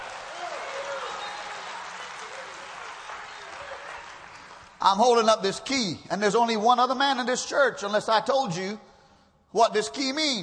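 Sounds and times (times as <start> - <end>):
church audience clapping hands: 0.0 - 4.9
speech: 4.8 - 8.9, 9.5 - 10.4.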